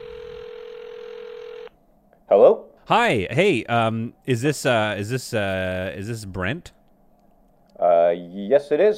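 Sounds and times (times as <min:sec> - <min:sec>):
electronic phone ringback tone on an outgoing call: 0:00.0 - 0:01.7
speech: 0:02.3 - 0:06.8, 0:08.5 - 0:08.9.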